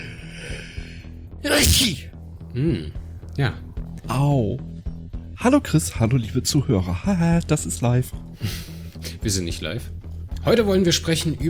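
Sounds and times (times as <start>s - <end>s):
speech: 1.4s - 4.7s, 5.4s - 11.4s
single loud sneeze: 1.5s - 2.0s.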